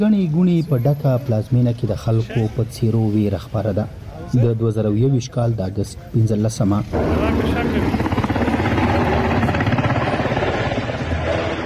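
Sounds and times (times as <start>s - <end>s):
speech: 0.0s - 8.1s
helicopters flying over Kabul city: 6.8s - 11.6s.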